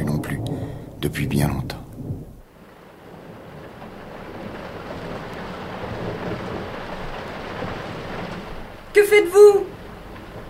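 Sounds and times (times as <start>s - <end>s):
deep thunder rumbling: 0.0s - 10.4s
heavy rain hissing in a thunderstorm: 0.0s - 10.4s
speech: 1.0s - 1.8s.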